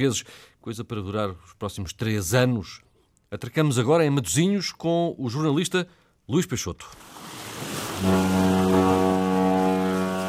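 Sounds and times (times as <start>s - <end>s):
speech: 0.0s - 8.5s
faint harbour water: 6.8s - 10.2s
deep ship horn at a cruise terminal: 8.0s - 10.2s.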